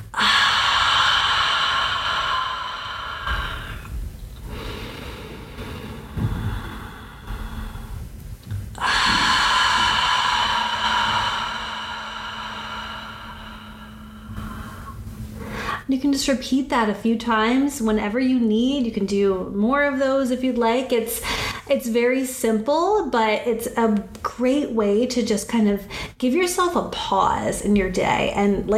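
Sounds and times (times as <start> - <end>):
deep breaths in through the nose and out through the mouth: 0.0 - 15.9, 21.2 - 21.7
speech: 16.0 - 28.7.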